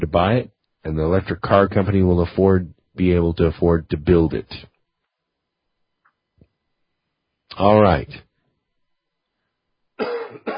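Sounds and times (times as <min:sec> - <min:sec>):
speech: 0:00.1 - 0:04.7, 0:07.5 - 0:08.3
person with a lingering cough picked up while travelling coughing: 0:10.0 - 0:10.5.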